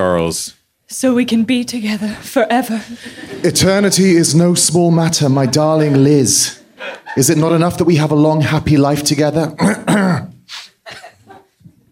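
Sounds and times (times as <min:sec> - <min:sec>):
speech: 0:00.1 - 0:10.3
laughter: 0:03.0 - 0:08.0
throat clearing from a dry throat: 0:09.6 - 0:11.5.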